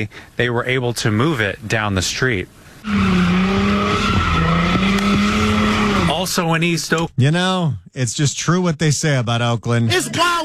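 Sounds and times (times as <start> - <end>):
speech: 0.0 - 3.4, 6.3 - 10.4
car engine roaring while circling an intersection: 2.7 - 6.7
car tires squealing in a skid while spinning at an intersection: 2.8 - 6.2.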